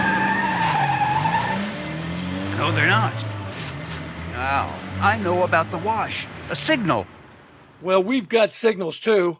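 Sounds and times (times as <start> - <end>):
car tires screeching as the car skids to a stop: 0.0 - 7.0
speech: 2.7 - 3.7, 4.4 - 7.2, 7.8 - 9.3.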